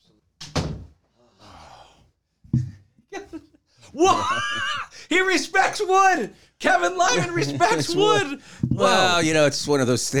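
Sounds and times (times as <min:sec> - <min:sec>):
door shutting with a solid thunk in a studio: 0:00.4 - 0:01.0
laughter: 0:03.1 - 0:05.4, 0:06.7 - 0:09.3
speech: 0:04.0 - 0:10.1.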